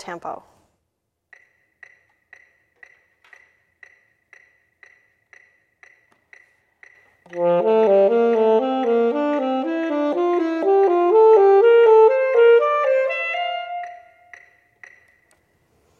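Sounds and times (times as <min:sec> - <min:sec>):
saxophone playing thirds in D major: 0:07.3 - 0:14.3.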